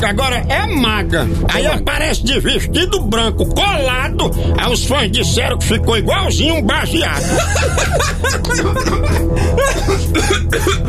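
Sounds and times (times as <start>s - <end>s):
speech: 0.0s - 10.8s
person coughing: 7.2s - 10.8s
snickering laughter: 7.2s - 10.8s.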